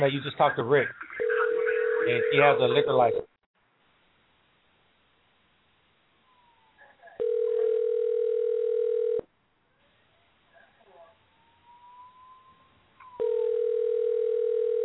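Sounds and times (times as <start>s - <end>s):
speech: 0.0s - 1.0s, 2.0s - 3.3s
faint noise: 0.0s - 14.8s
phone ringback tone: 1.2s - 3.2s, 7.2s - 9.3s, 13.1s - 14.8s.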